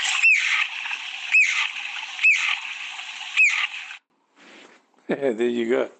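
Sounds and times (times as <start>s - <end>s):
ground woodpecker harsh descending call: 0.1s - 2.7s, 3.3s - 3.8s
speech: 5.1s - 5.9s.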